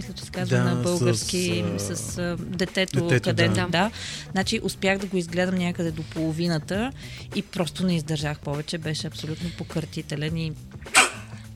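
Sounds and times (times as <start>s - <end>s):
speech: 0.0s - 11.0s
single sharp sneeze: 10.9s - 11.4s.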